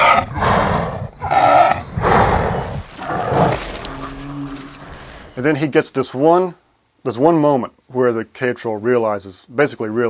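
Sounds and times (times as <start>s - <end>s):
tiger inhale and lynx exhale creature breaths: 0.0s - 3.9s
speech: 5.4s - 10.0s.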